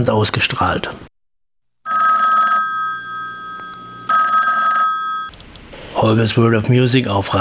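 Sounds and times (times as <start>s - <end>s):
speech: 0.0s - 1.1s, 6.0s - 7.3s
telephone bell ringing: 1.9s - 5.3s.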